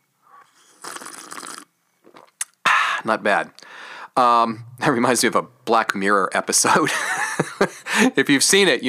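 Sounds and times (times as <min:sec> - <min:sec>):
slurping a sip of tea from a cup: 0:00.4 - 0:02.3
speech: 0:03.0 - 0:03.6, 0:04.2 - 0:08.8.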